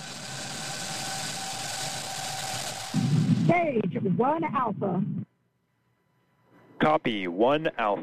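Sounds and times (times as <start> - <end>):
rocket engines roaring at liftoff: 0.0 - 4.9
speech: 3.5 - 5.2, 6.8 - 8.0.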